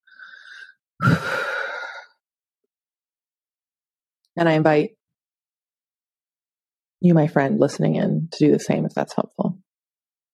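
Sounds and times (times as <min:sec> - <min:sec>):
deep breath: 0:00.0 - 0:02.2
speech: 0:04.4 - 0:05.0, 0:07.0 - 0:09.6.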